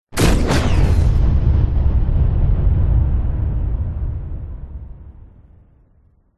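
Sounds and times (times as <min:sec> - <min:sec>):
large explosion: 0:00.1 - 0:06.3
incoming warfare missile bomb whoosh: 0:00.2 - 0:04.5.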